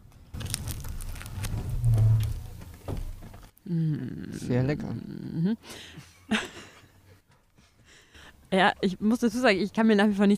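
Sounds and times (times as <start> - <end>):
biting into a fresh Bierstange pretzel stick: 0.3 - 2.5
low rumble: 0.4 - 3.5
speech: 3.7 - 6.5, 8.5 - 10.3
laughter: 6.0 - 7.1.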